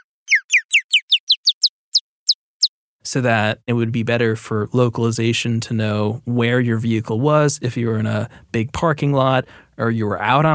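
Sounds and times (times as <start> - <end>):
pitched-up mountain bluebird chirp: 0.0 - 2.7
speech: 3.0 - 10.5.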